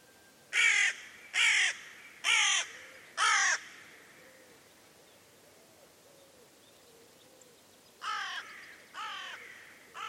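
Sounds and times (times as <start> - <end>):
bird giving loud raspy caws: 0.5 - 4.6, 8.0 - 10.0.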